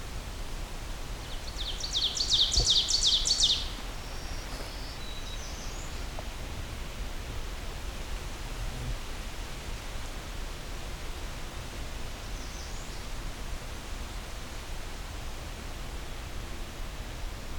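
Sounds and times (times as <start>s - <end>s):
steady outdoor hiss: 0.0s - 17.5s
ovenbird singing loud chanting phrases: 1.2s - 6.3s.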